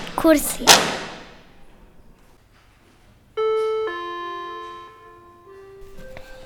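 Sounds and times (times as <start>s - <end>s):
speech: 0.2s - 1.0s
two-tone doorbell chime: 3.4s - 6.4s.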